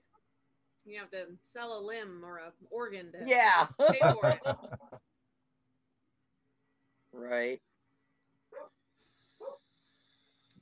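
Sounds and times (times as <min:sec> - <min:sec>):
quiet steady hum: 0:00.0 - 0:10.6
speech: 0:00.9 - 0:04.9, 0:07.2 - 0:07.7
laughter: 0:03.8 - 0:05.0
dog barking: 0:08.5 - 0:08.8, 0:09.4 - 0:09.6.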